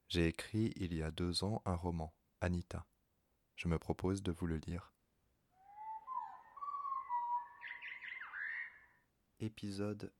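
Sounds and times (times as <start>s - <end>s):
speech: 0.1s - 2.9s, 3.6s - 4.9s, 9.4s - 10.1s
bird calling and warbling: 5.5s - 9.1s.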